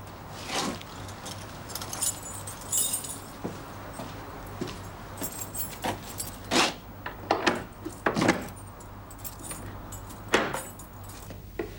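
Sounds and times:
keys jangling and clinking: 0:01.0 - 0:03.4, 0:04.8 - 0:06.6, 0:07.6 - 0:11.4.

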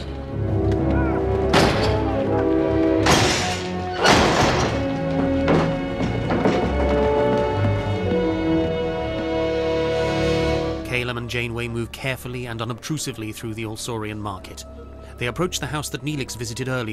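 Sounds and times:
droning musical score: 0:00.0 - 0:10.9, 0:11.5 - 0:16.9
front door being battered down: 0:01.5 - 0:02.1, 0:03.0 - 0:07.1
speech: 0:11.1 - 0:16.9.

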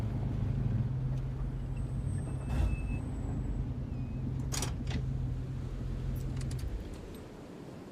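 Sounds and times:
SUV engine humming from inside the cabin: 0:00.0 - 0:07.5.

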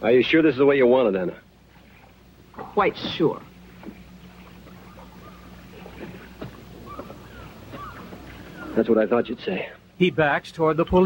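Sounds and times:
speech: 0:00.0 - 0:01.5, 0:02.8 - 0:04.0, 0:08.8 - 0:11.0
motor launch engine steady low drone: 0:00.0 - 0:11.0
water splashing and lapping around the hull: 0:01.2 - 0:09.9
faint chirps and squeaks: 0:03.9 - 0:08.9.

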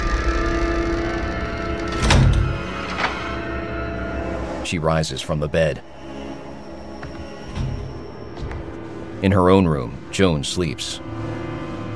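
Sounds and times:
low hum: 0:00.0 - 0:11.9
bedroom door swinging shut with a soft thud: 0:01.8 - 0:03.4
speech: 0:04.7 - 0:06.0, 0:09.2 - 0:11.2.

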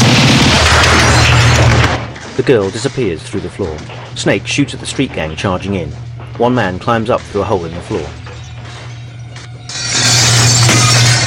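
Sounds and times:
window smashed from outside with a crowbar: 0:00.0 - 0:02.9, 0:09.7 - 0:11.2
low steady hum: 0:00.0 - 0:11.2
speech: 0:02.4 - 0:08.2.

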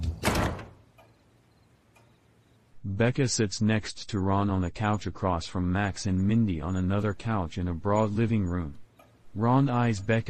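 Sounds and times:
heavy mansion front door creaking open: 0:00.2 - 0:01.1
speech: 0:03.0 - 0:08.8, 0:09.4 - 0:10.2.

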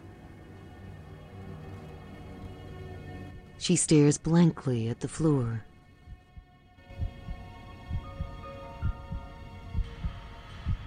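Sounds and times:
soft sustained hum: 0:00.0 - 0:10.8
speech: 0:03.6 - 0:05.7
heartbeat thumping: 0:06.0 - 0:10.8.

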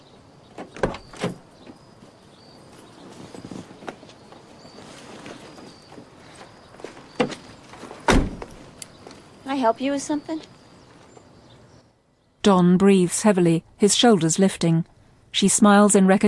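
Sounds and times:
car door opening: 0:00.5 - 0:01.8, 0:08.0 - 0:08.6
car door thud: 0:08.0 - 0:08.6
speech: 0:09.6 - 0:10.6, 0:12.4 - 0:16.2.

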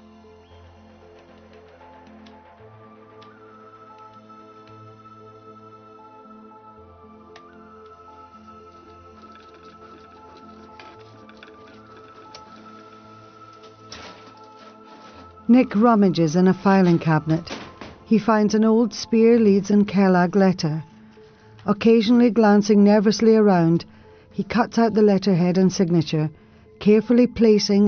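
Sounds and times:
small clicks and ticks of a printer: 0:07.4 - 0:15.2
printer slowly feeding out a page: 0:09.6 - 0:15.5
speech: 0:15.5 - 0:20.9, 0:21.6 - 0:27.8.

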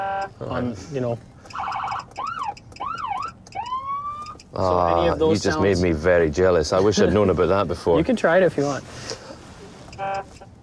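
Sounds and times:
speech: 0:00.0 - 0:01.7, 0:04.5 - 0:09.2
officer's truck electronic siren used to chase bears away: 0:01.5 - 0:04.4.

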